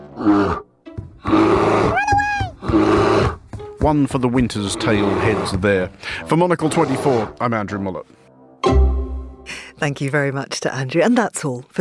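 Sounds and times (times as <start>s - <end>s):
bear roaring in growling bursts: 0.0s - 3.4s, 4.6s - 5.9s, 6.5s - 7.4s
speech: 3.8s - 8.8s, 9.8s - 11.7s.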